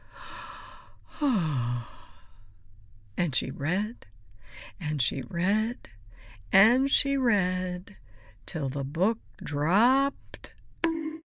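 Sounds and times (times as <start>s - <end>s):
narrator acting out a woman's yawn: 0.2s - 2.3s
speech: 3.2s - 10.6s.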